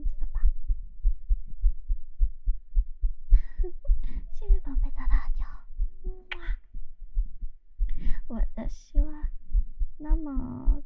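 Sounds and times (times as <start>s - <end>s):
rapid heartbeat of deep low thumps: 0.0s - 10.8s.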